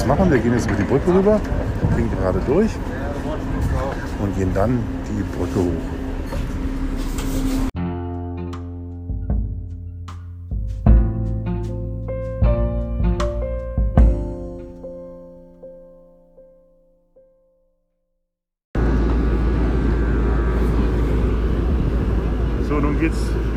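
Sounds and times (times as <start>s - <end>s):
speech: 0.0s - 3.5s, 4.2s - 6.0s
harbor ferry outboard motors running in Hamburg: 0.0s - 7.7s, 18.8s - 23.5s
ringing musical notes: 7.8s - 17.6s.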